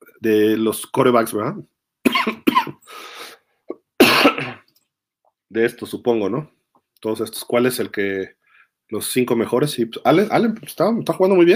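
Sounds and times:
speech: 0:00.2 - 0:02.5, 0:05.5 - 0:11.5
harsh coughing fit: 0:02.0 - 0:02.9, 0:03.7 - 0:04.7
wheezy breath: 0:02.8 - 0:03.5.

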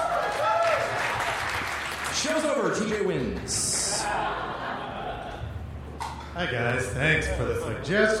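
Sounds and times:
crowd applauding: 0:00.0 - 0:04.5
speech: 0:02.2 - 0:04.5, 0:06.4 - 0:08.1
laughter: 0:03.5 - 0:05.7.

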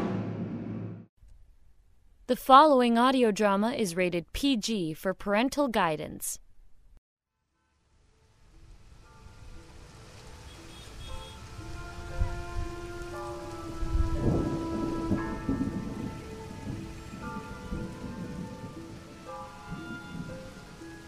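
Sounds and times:
speech: 0:02.3 - 0:06.4
heavy rain: 0:08.2 - 0:21.0
low thunder rumbling: 0:11.4 - 0:21.0.

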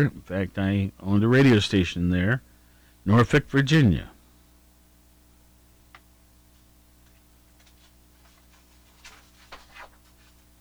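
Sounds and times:
speech: 0:00.0 - 0:04.1
paper pages of a ranked list being turned: 0:07.6 - 0:10.5.

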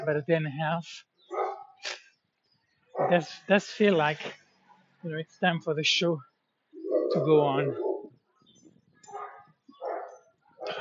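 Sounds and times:
speech: 0:00.0 - 0:01.1, 0:01.8 - 0:02.0, 0:03.0 - 0:04.4, 0:05.0 - 0:06.3, 0:07.1 - 0:07.8
dogs barking: 0:01.3 - 0:01.8, 0:02.9 - 0:03.4, 0:06.8 - 0:08.1, 0:09.0 - 0:10.7.

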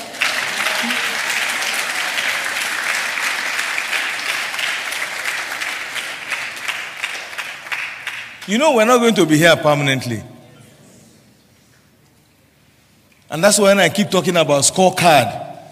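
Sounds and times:
large group applauding steadily: 0:00.0 - 0:08.9
speech: 0:08.5 - 0:10.3, 0:13.3 - 0:15.5.

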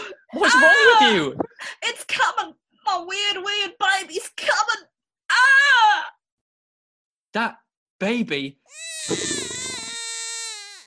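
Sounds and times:
speech: 0:00.4 - 0:06.1, 0:07.4 - 0:09.3
newborn tiger cub crying: 0:08.7 - 0:10.8.

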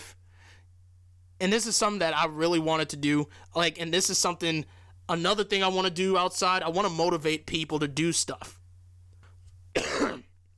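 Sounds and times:
faint low hum: 0:00.0 - 0:10.5
speech: 0:01.4 - 0:08.6
person clearing throat: 0:09.7 - 0:10.4.

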